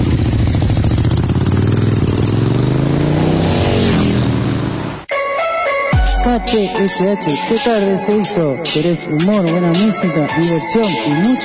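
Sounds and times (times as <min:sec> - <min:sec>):
motorcycle engine revving: 0:00.0 - 0:05.1
speech: 0:06.3 - 0:11.4.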